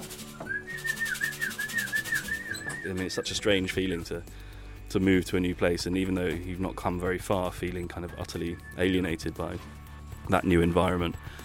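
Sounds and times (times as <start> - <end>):
person whistling a gently warbling tune: 0.2 - 3.3, 8.3 - 9.6
speech: 2.9 - 11.4.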